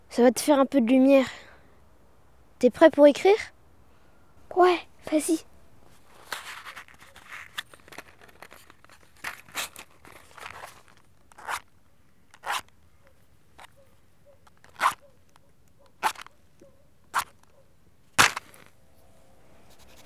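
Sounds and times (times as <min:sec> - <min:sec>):
speech: 0:00.2 - 0:01.5, 0:02.6 - 0:03.6, 0:04.5 - 0:05.5
match being struck at night beside a lake: 0:18.2 - 0:18.7.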